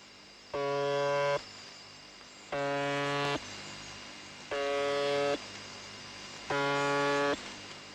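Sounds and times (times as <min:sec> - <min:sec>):
steady hiss of shortwave static: 0:00.0 - 0:07.9
harsh droning shortwave buzzer station signal on 4625 kilohertz: 0:00.5 - 0:01.6, 0:02.5 - 0:03.4, 0:04.4 - 0:05.5, 0:06.4 - 0:07.5.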